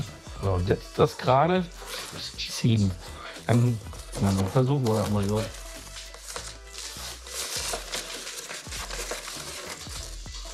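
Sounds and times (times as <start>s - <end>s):
speech: 0.4s - 5.6s
thin plastic film crinkling and tearing while being cut: 3.5s - 10.5s.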